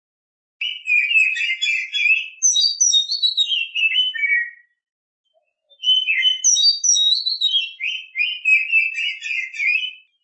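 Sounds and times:
Oriental magpie-robin singing: 0:00.6 - 0:04.8, 0:05.4 - 0:10.2.

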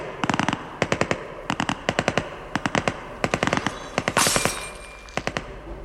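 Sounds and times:
rapid machine-gun bursts in a heavy exchange of gunfire: 0:00.2 - 0:05.4.

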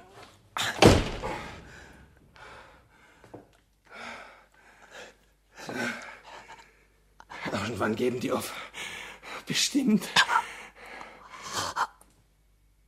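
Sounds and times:
door being rammed and slammed shut: 0:00.7 - 0:01.7
speech: 0:07.8 - 0:08.7, 0:09.5 - 0:10.3.

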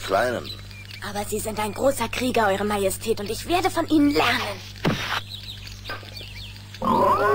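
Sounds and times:
low steady hum: 0:00.0 - 0:07.3
speech: 0:00.1 - 0:05.2
wild boar grunting: 0:06.8 - 0:07.3.

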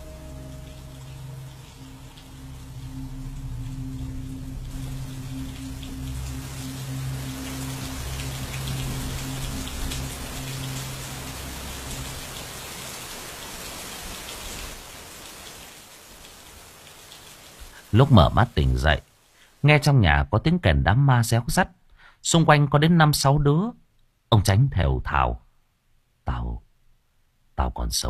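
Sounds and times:
heavy pouring rain: 0:00.0 - 0:19.8
speech: 0:17.9 - 0:25.4, 0:27.6 - 0:28.0.

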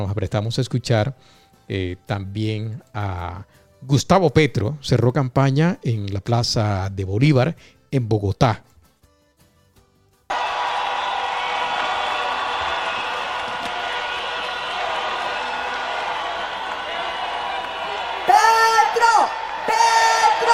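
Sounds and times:
speech: 0:00.0 - 0:08.7
large crowd roaring and cheering at a campaign rally in a plaza: 0:10.3 - 0:20.5.

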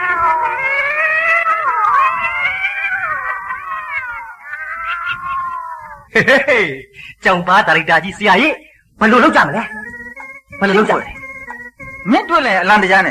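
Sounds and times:
cat yowling: 0:00.0 - 0:06.1
speech: 0:06.2 - 0:09.8, 0:10.6 - 0:11.2, 0:12.0 - 0:13.0.

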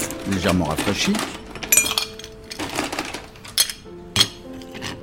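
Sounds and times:
ice cubes clinking into a mixing glass for a vodka cocktail: 0:00.0 - 0:04.9
speech: 0:00.2 - 0:01.4.

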